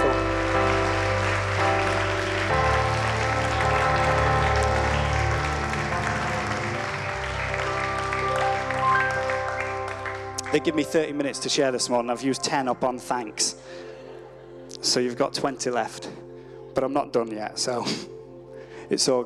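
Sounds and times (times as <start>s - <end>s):
audience applause: 0.0s - 11.5s
sustained music: 0.0s - 19.2s
speech: 10.5s - 13.9s, 14.8s - 16.2s, 16.8s - 18.2s, 18.9s - 19.2s.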